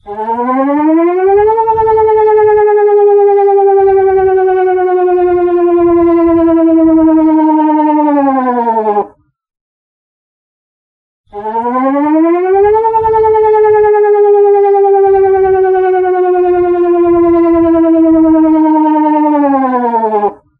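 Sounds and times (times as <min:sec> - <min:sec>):
Danish air raid siren tone as a ringtone: 0:00.0 - 0:09.1, 0:11.3 - 0:20.5.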